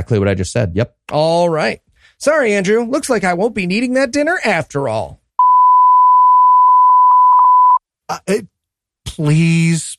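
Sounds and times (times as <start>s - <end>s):
speech: 0.0s - 5.2s, 8.1s - 9.9s
loud steady censor bleep tone: 5.4s - 7.8s.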